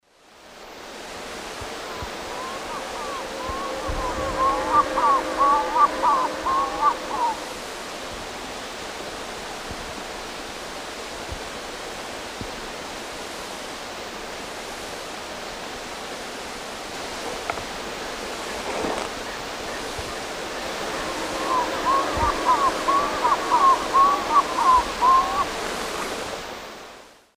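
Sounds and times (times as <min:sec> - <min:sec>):
Gallinago paraguaiae calls in South America: 0:01.8 - 0:07.5, 0:19.2 - 0:26.0.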